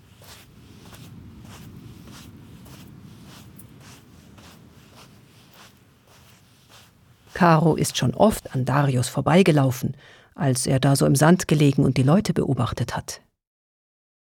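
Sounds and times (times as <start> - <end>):
low rumble of wind or surf by the sea: 0.0 - 9.3
camel carrying a rider plodding through sand by the sea: 0.0 - 9.4
speech: 7.4 - 13.3.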